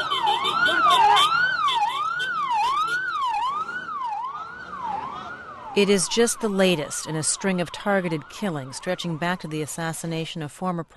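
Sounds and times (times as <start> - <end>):
ambulance sirens wailing along Beirut's waterfront after a bomb explosion: 0.0 - 10.3
speech: 5.8 - 10.9.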